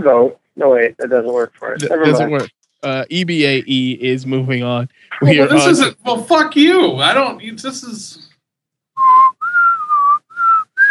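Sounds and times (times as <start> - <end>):
speech: 0.0 - 8.3
audio feedback whistling on the connection: 9.0 - 10.9.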